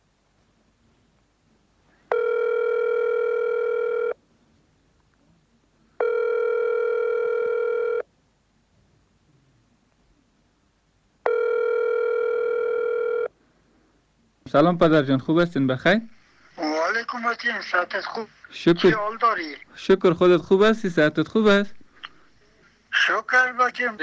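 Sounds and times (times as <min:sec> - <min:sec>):
ringback tone of an outgoing phone call: 0:02.1 - 0:04.2, 0:06.0 - 0:08.0, 0:11.2 - 0:13.3
speech: 0:14.5 - 0:16.2, 0:17.2 - 0:21.8, 0:23.0 - 0:24.0.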